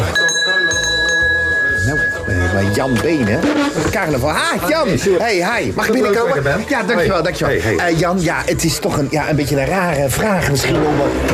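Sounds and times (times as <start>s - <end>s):
small wall-mounted pull bell ringing: 0.0s - 3.5s
voices: 0.0s - 11.3s
speech: 2.6s - 11.3s.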